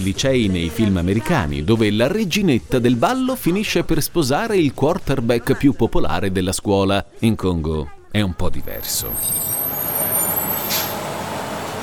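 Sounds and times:
speech: 0.0s - 9.6s
large bus idling with a low engine rumble: 8.6s - 11.8s
sharp hiss of bus air brakes: 9.1s - 11.8s.

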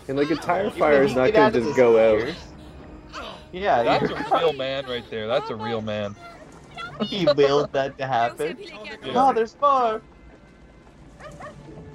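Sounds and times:
low steady hum: 0.0s - 11.2s
laughter: 0.1s - 2.4s, 3.6s - 6.1s, 6.8s - 9.5s
speech: 0.1s - 2.5s, 3.5s - 6.3s, 7.0s - 10.1s
dog yelping barks with a whimpering edge: 11.2s - 11.6s.

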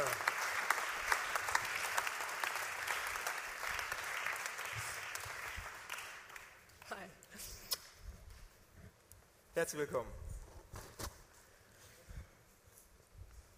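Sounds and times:
audience applause: 0.0s - 6.9s
speech: 9.6s - 10.3s.

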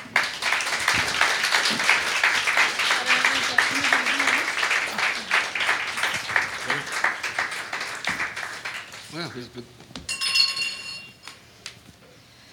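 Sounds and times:
audience applauding a panel of speakers: 0.0s - 9.6s
faint clinks: 10.1s - 11.4s.

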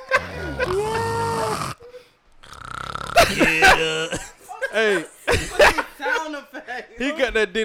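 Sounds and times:
laughter: 0.0s - 1.6s, 3.2s - 6.4s
voice imitating snoring with a fluttering rattling pulse: 0.0s - 4.1s
speech: 3.3s - 7.6s.

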